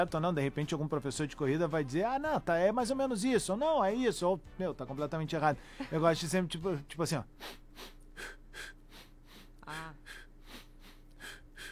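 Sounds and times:
speech: 0:00.0 - 0:08.7
breathy mouth exhales: 0:07.4 - 0:11.7
quick nasal sniffs: 0:07.4 - 0:11.7.

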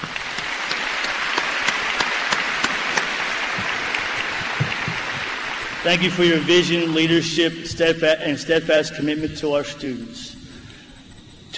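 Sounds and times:
crowd applauding: 0:00.0 - 0:07.1
speech: 0:05.8 - 0:10.4.

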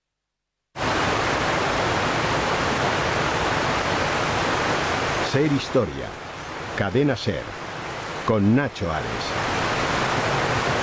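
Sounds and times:
steady dense rush of water: 0:00.8 - 0:10.8
speech: 0:05.3 - 0:06.2, 0:06.8 - 0:07.6, 0:08.2 - 0:09.6.

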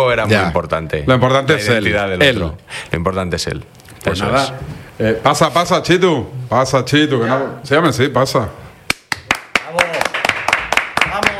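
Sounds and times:
speech: 0:00.0 - 0:08.6
thin canned-sounding applause: 0:09.2 - 0:11.3.

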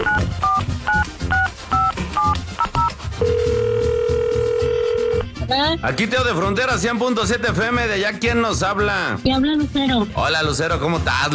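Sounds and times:
touch-tone dialing of a telephone number: 0:00.0 - 0:05.3
steady telephone tone: 0:03.2 - 0:05.3
speech: 0:05.7 - 0:11.3.

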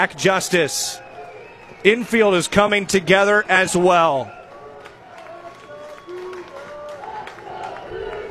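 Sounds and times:
speech: 0:00.0 - 0:01.0, 0:01.8 - 0:04.4
large baseball stadium crowd cheering and roaring after a home run: 0:00.0 - 0:08.3
scattered claps from the baseball crowd: 0:01.1 - 0:08.3.

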